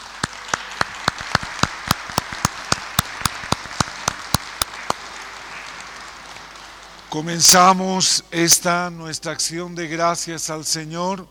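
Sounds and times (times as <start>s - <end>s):
audience clapping in unison in welcome: 0.0s - 8.1s
speech: 7.1s - 11.2s.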